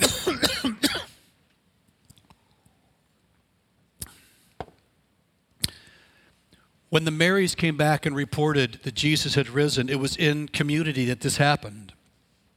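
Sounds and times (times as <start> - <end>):
person coughing: 0.0 - 1.2
speech: 6.9 - 12.0.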